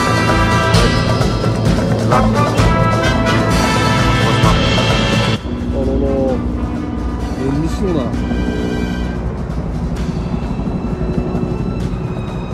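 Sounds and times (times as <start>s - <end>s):
helicopter flying overhead: 0.0s - 12.5s
speech: 2.1s - 2.6s.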